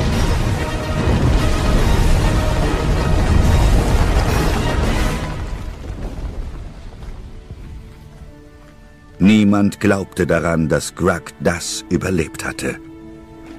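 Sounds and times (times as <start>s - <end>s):
volcanoes erupting with a huge pressure wave: 0.0s - 7.7s
crackling volcanic debris: 0.0s - 8.6s
speech: 9.6s - 12.9s.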